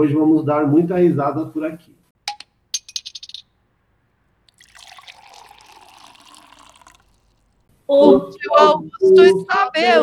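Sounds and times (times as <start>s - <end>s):
speech: 0.0s - 2.0s, 7.9s - 10.0s
glasses clinking for a toast: 2.3s - 3.7s, 4.5s - 7.6s
drink poured into a glass at a bar table: 4.4s - 7.6s.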